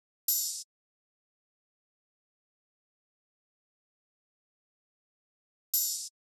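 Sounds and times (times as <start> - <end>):
open hi-hat: 0.3 - 0.7, 5.8 - 6.1
wood block drum loop at 176 BPM: 0.4 - 0.6, 5.8 - 6.1.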